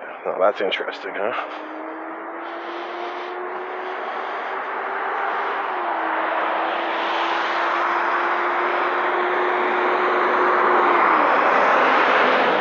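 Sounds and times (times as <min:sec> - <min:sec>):
street noise: 0:00.0 - 0:12.5
speech: 0:00.2 - 0:01.8.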